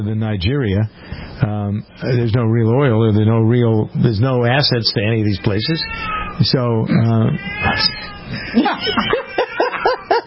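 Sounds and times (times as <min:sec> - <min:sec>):
speech: 0:00.0 - 0:09.2
deaf cat meowing loudly: 0:05.7 - 0:06.4, 0:07.2 - 0:09.8
laughter: 0:08.3 - 0:10.2.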